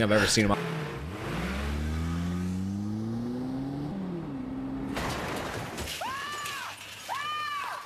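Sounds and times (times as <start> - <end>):
speech: 0.0 - 0.8
car engine revving: 0.2 - 5.0
car crashing into a brick wall with breaking debris: 4.9 - 7.3.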